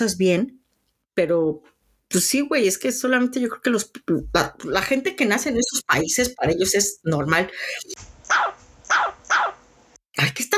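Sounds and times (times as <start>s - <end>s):
speech: 0.0s - 0.6s, 1.2s - 8.0s, 10.2s - 10.5s
dog barking on a sofa in a living room: 8.3s - 9.6s.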